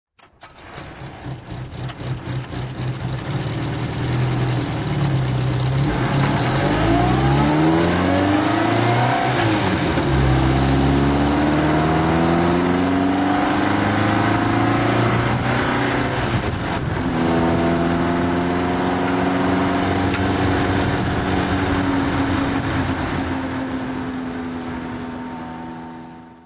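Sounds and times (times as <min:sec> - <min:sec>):
tuned TR3 car driving: 0:01.1 - 0:26.4.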